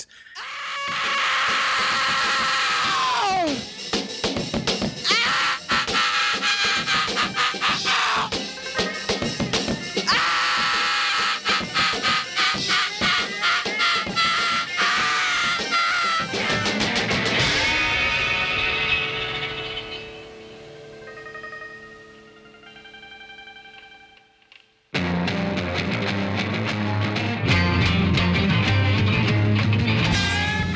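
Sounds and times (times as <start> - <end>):
person screaming and wailing with a raw hoarse voice: 0.3 - 3.7, 5.0 - 8.4, 10.0 - 16.8
loud distorted rock music: 0.8 - 30.7
crashing drums: 0.9 - 19.6.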